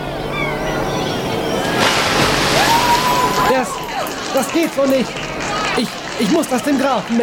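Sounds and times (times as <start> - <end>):
river water sloshing: 0.2 - 6.3
heavy wooden crate splashing into a river: 1.6 - 3.6
speech: 4.4 - 7.2.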